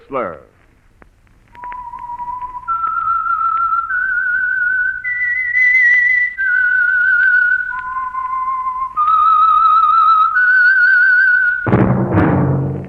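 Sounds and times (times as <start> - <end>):
whistled theme tune: 1.5 - 11.7
sudden noisy burst: 11.6 - 12.8.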